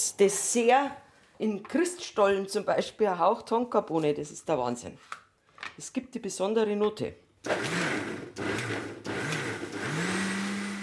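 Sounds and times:
speech: 0:00.1 - 0:07.8
kitchen blender mixing ice cream base: 0:07.4 - 0:10.8.

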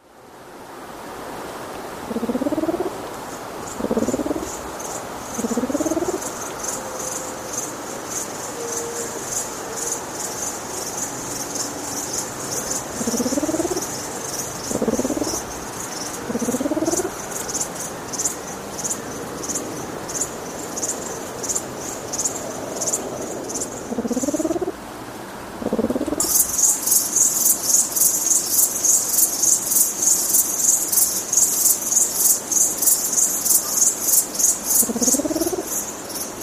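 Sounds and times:
steady high buzzing of insects: 0:01.4 - 0:36.4
reconstructed Mauritius blue pigeon low rising croaking coos: 0:02.0 - 0:03.0, 0:03.7 - 0:04.7, 0:05.3 - 0:07.4, 0:12.8 - 0:17.8, 0:22.9 - 0:24.8, 0:25.6 - 0:26.9, 0:33.6 - 0:35.9.

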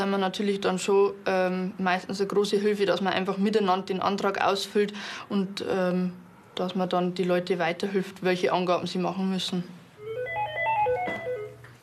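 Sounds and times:
speech: 0:00.0 - 0:09.8
telephone ringing with an electronic ringtone: 0:10.0 - 0:11.6.

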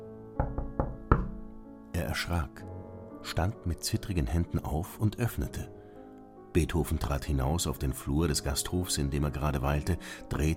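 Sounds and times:
knocking on a wooden door: 0:00.4 - 0:01.6
speech: 0:02.0 - 0:05.8, 0:06.6 - 0:10.5.

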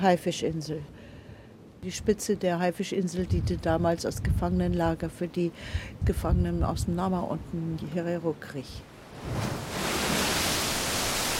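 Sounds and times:
speech: 0:00.0 - 0:01.0, 0:01.8 - 0:09.6
cold blustery wind on coast: 0:00.0 - 0:11.3
Atlantic surf roaring on coast: 0:09.0 - 0:11.3.

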